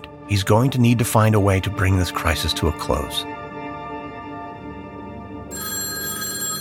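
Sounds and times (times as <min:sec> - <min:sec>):
speech: 0:00.3 - 0:03.4
telephone ringing with a bright electronic tone: 0:05.5 - 0:06.5.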